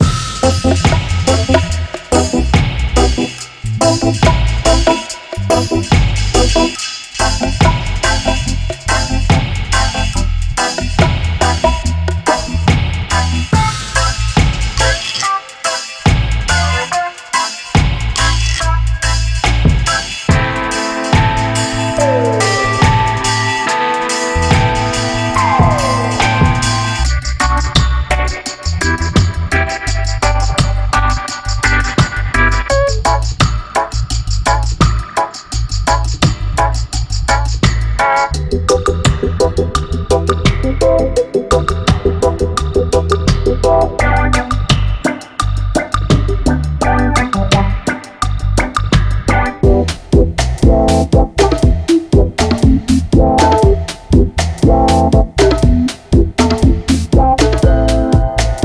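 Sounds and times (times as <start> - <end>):
reggae keyboard: 0.0 - 58.6.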